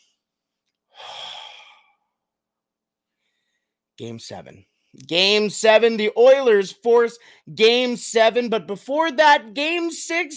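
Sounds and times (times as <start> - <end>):
deep breath: 0.9 - 2.2, 3.1 - 3.8, 7.2 - 7.5
speech: 4.0 - 10.3.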